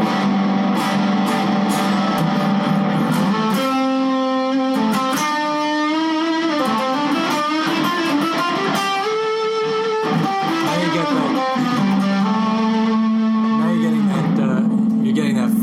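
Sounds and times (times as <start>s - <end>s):
heavily overdriven electric guitar through a cranked amplifier with reverb: 0.0s - 15.6s.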